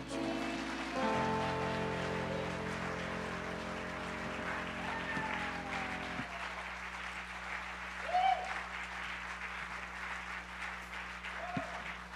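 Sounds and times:
sustained organ-like tone: 0.0s - 6.2s
large crowd applauding: 0.0s - 12.1s.

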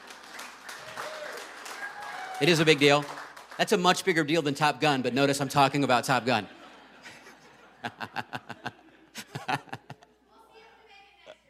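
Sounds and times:
audience applause: 0.0s - 4.8s
speech: 2.4s - 6.6s, 7.8s - 8.1s
laughter: 4.9s - 10.3s.

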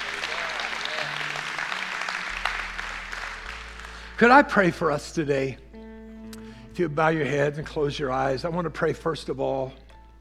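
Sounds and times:
audience clapping: 0.0s - 4.9s
speech: 4.2s - 5.6s, 6.8s - 9.8s.

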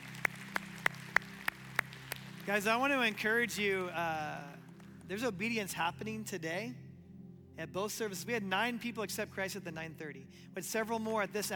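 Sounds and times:
people clapping at a church service: 0.0s - 5.2s
speech: 2.5s - 6.8s, 7.6s - 11.5s.

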